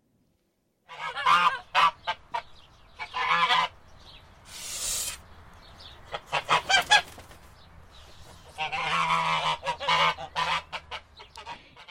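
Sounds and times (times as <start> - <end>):
goose cackling loudly: 0.9 - 3.8, 6.1 - 7.1, 8.4 - 11.8.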